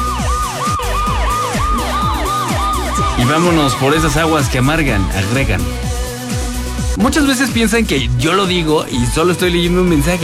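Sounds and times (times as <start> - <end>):
loud ambulance siren wailing in a fast yelp: 0.0 - 6.6
low rumbling: 0.9 - 7.0
speech: 3.2 - 5.8, 7.0 - 10.2.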